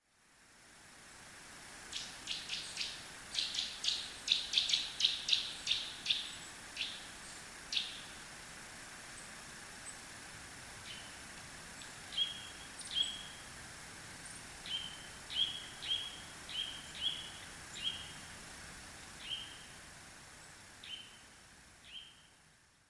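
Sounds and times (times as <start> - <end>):
nuthatch calling: 2.0 - 7.0, 12.1 - 13.4, 14.7 - 18.1.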